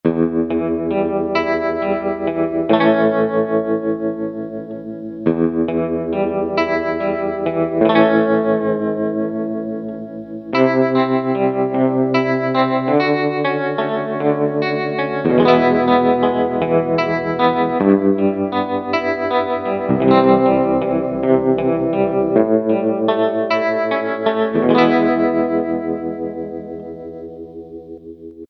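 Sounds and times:
Gretch guitar tremolo: 0.1s - 28.4s.

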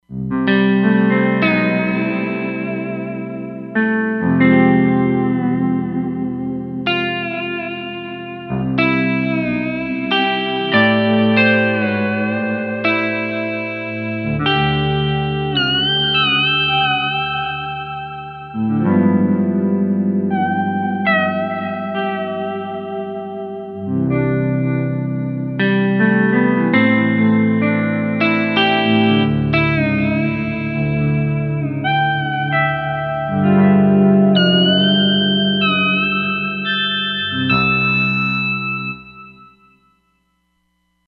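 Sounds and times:
pedal steel guitar on a Roland Fantom XR synthesizer: 0.0s - 40.0s.

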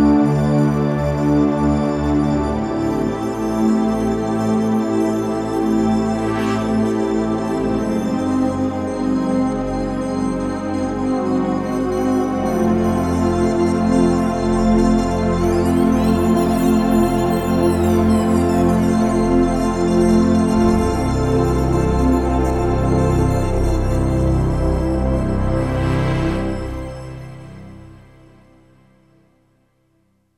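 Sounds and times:
warm shimmer synthesizer pad on Roland JD-990: 0.2s - 28.5s.

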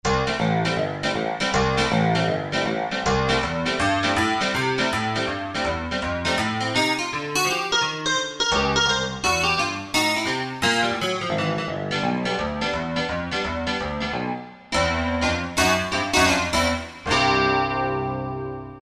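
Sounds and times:
picked piano on a Korg T3: 0.0s - 18.8s.

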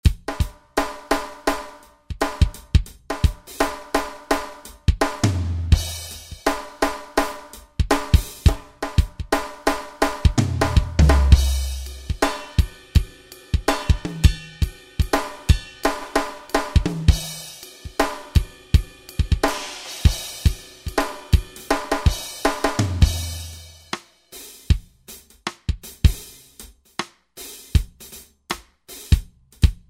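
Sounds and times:
funk drums from Roland SR-JV80-10: 0.0s - 29.8s
funk bass from Roland SR-JV80-10: 5.0s - 6.5s, 10.4s - 12.2s, 22.8s - 23.7s.

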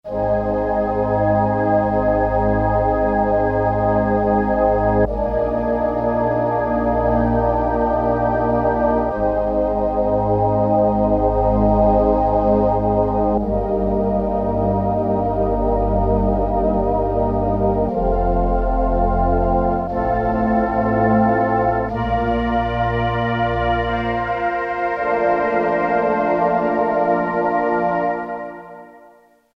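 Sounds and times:
urban synth pad: 0.1s - 29.2s.

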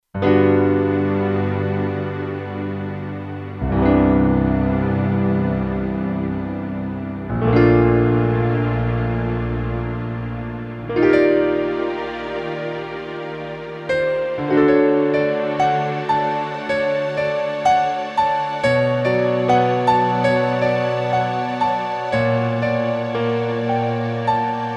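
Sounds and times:
bright grand piano on a synthesizer: 0.1s - 24.7s
synthesizer strings: 0.2s - 24.7s.

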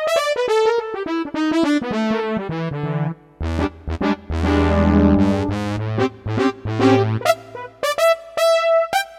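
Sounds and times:
brassy synth lead: 0.1s - 9.1s.

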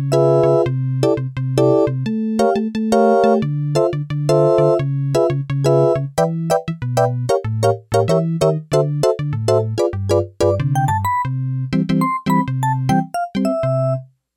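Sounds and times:
Yamaha DX11 synthesizer organ factory preset voice: 0.1s - 14.0s.

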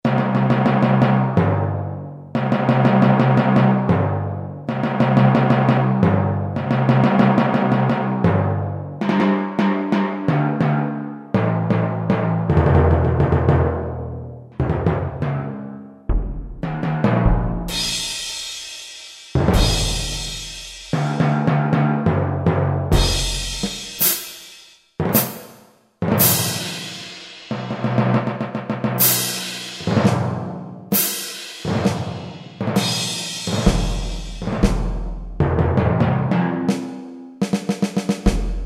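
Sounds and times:
synthesized timpani from Kurzweil K2000 orchestral ROM: 0.0s - 14.0s, 14.6s - 38.6s
synthesized orchestral percussion from Kurzweil K2000 ROM: 16.1s - 21.2s, 23.0s - 27.9s, 28.9s - 35.2s.

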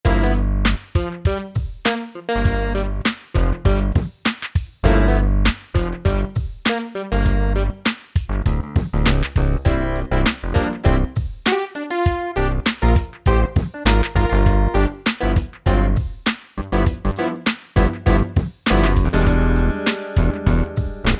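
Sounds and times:
funk jam: 0.0s - 21.1s.

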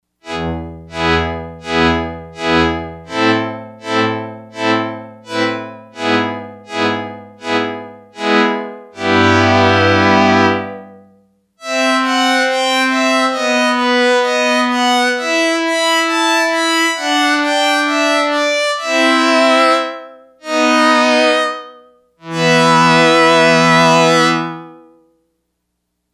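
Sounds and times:
Yamaha DX100 strings factory patch: 0.3s - 11.0s, 11.6s - 24.8s.

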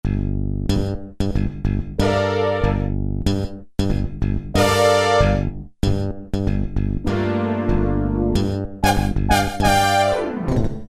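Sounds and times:
slap bass synth preset: 0.0s - 10.8s
brass synth preset: 2.0s - 2.9s, 4.6s - 5.5s, 8.8s - 10.5s.

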